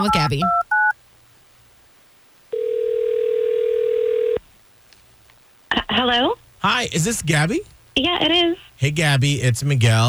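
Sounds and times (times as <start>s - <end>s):
speech: 0.0s - 0.7s, 6.1s - 10.0s
telephone dial tone while placing a call: 2.6s - 4.4s.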